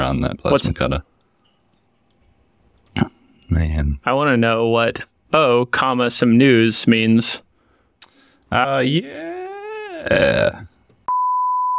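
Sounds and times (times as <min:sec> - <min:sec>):
speech: 0:00.1 - 0:01.1, 0:03.0 - 0:07.5, 0:08.5 - 0:09.3, 0:10.0 - 0:10.7
drawn-out wavering vocal groan: 0:08.8 - 0:10.8.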